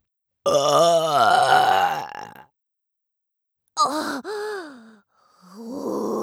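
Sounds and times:
long loud croaky burp: 0.5 - 2.5.

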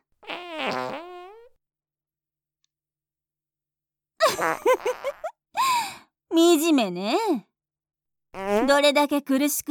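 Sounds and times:
fart: 0.2 - 1.6, 4.4 - 5.4, 8.4 - 8.7
speech: 4.3 - 7.5, 8.4 - 9.6.

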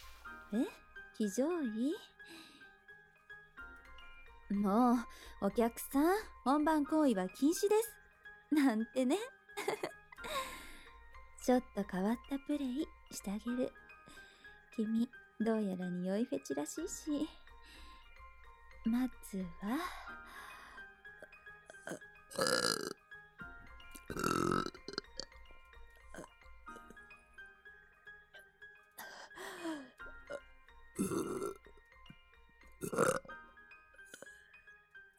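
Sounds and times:
speech: 0.5 - 2.5, 4.5 - 10.4, 11.4 - 17.8, 18.8 - 20.2, 21.9 - 23.0, 24.1 - 24.8
woman burping: 21.7 - 23.0, 24.1 - 25.3, 26.1 - 26.3, 31.0 - 31.6, 32.8 - 33.3.

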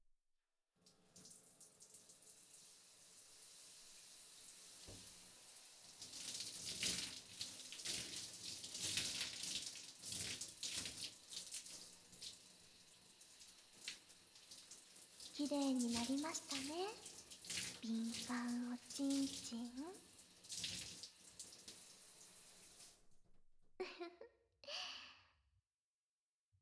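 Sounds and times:
shower water spraying and rinsing: 2.6 - 12.4, 13.2 - 23.0
speech: 15.4 - 17.1, 17.8 - 20.1.

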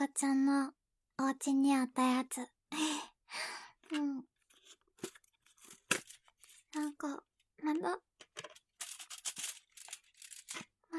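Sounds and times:
speech: 0.0 - 4.3, 6.8 - 8.5
aluminium foil crinkled and crunched by hand: 5.0 - 6.8, 8.5 - 10.9.

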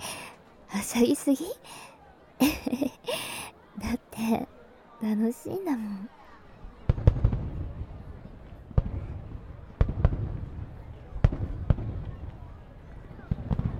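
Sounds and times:
steady low crowd murmur: 0.0 - 13.7
speech: 0.8 - 6.2
laughter: 2.4 - 4.4
fireworks exploding with sharp cracks and booms: 6.9 - 13.7.

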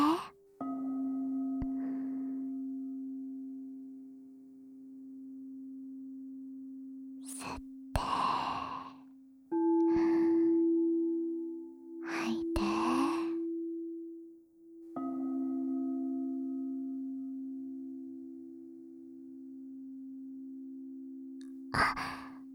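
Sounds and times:
slow breathing in and out: 0.0 - 0.3, 7.3 - 9.1, 9.7 - 11.0, 12.0 - 13.5, 21.8 - 22.4
steady low sustained tone: 0.0 - 22.5.

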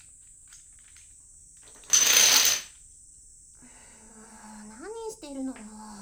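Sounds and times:
small hard domino tiles clattering and being toppled: 1.6 - 2.7.

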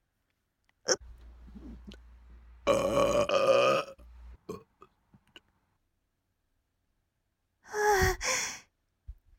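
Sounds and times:
loud drawn-out burp: 0.9 - 2.0, 2.7 - 4.7.

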